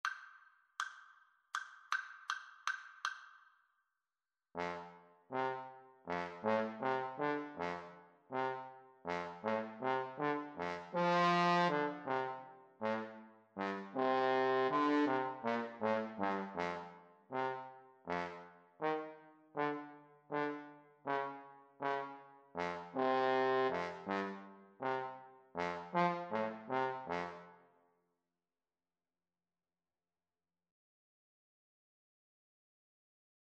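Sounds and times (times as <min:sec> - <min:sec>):
trombone in a trumpet and trombone duet: 0:04.6 - 0:27.5
trumpet in a trumpet and trombone duet: 0:04.6 - 0:27.6.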